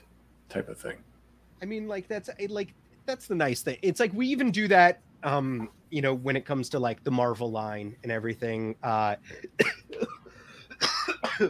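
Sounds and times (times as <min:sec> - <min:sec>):
speech: 0:00.5 - 0:10.2
person coughing: 0:09.3 - 0:11.4.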